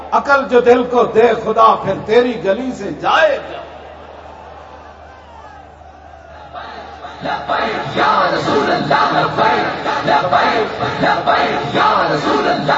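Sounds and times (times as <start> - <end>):
speech: 0.2 - 3.7, 7.2 - 12.7
large crowd at a conference chanting political slogans: 3.7 - 12.7.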